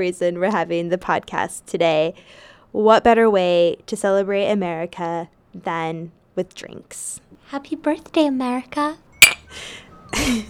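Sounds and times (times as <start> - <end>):
speech: 0.0 - 10.4
two cocktail glasses clinking in a toast: 9.1 - 10.4.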